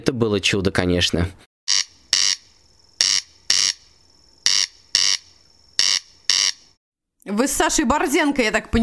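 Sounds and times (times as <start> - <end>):
speech: 0.0 - 1.5, 7.2 - 8.8
corncrake calling crex-crex: 1.7 - 6.8.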